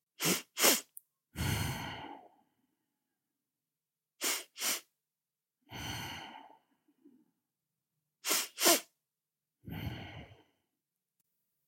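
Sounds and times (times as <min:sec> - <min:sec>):
two quick short sniffing inhales through the nose: 0:00.2 - 0:01.8, 0:04.2 - 0:04.9, 0:08.2 - 0:08.9.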